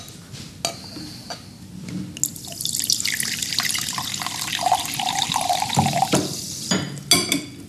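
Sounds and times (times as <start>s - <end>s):
drink being poured into a glass: 2.2s - 6.6s
glassware clinking: 2.6s - 7.5s.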